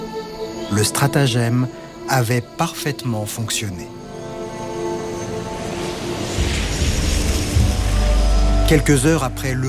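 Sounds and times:
speech: 0:00.7 - 0:04.1, 0:08.7 - 0:09.6
airplane landing at the airport in Bogotá, Colombia: 0:04.0 - 0:09.3
deeper rumble: 0:05.3 - 0:09.6.

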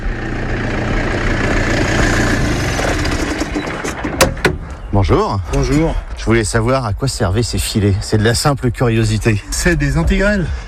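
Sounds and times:
tractor engine working in a vineyard: 0:00.0 - 0:07.7
speech: 0:05.0 - 0:10.6.

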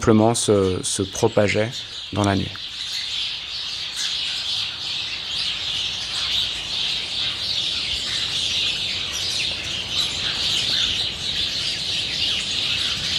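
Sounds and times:
speech: 0:00.0 - 0:02.7
large flock of starlings chattering in a tree: 0:00.0 - 0:13.1.

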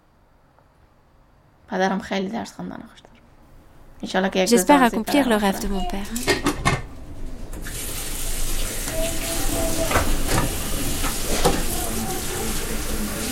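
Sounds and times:
speech: 0:01.7 - 0:03.2, 0:04.0 - 0:06.5
water running from a tap while food is prepared: 0:07.6 - 0:13.3.

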